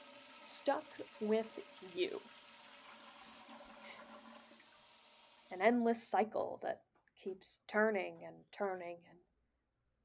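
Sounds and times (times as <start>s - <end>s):
water swirling down the drain: 0.0s - 5.5s
toilet flushing: 0.0s - 5.6s
speech: 0.7s - 2.4s, 5.5s - 9.3s.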